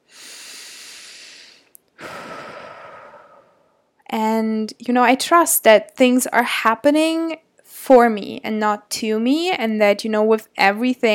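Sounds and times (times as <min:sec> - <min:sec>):
deep breath: 0:00.0 - 0:03.9
speech: 0:04.1 - 0:11.1.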